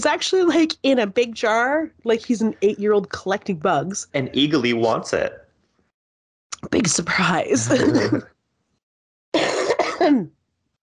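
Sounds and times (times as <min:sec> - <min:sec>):
speech: 0:00.0 - 0:05.4, 0:06.6 - 0:08.4, 0:10.0 - 0:10.4
raspy lingering cough: 0:07.6 - 0:08.3, 0:09.4 - 0:10.3.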